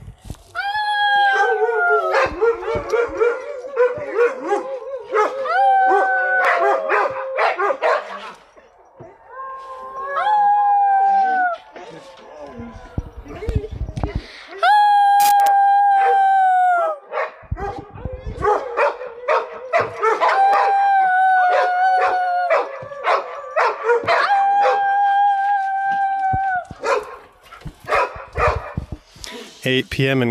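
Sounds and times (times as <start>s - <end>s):
several dogs howling together: 0.7s - 28.9s
dogs yipping and barking: 1.4s - 9.3s, 17.1s - 20.8s, 21.5s - 24.8s, 26.7s - 28.9s
speech: 29.7s - 30.2s.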